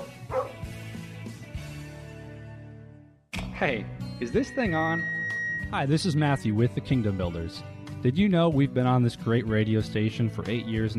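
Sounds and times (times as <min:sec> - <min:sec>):
dog barking: 0:00.0 - 0:00.6
speech: 0:03.6 - 0:10.9.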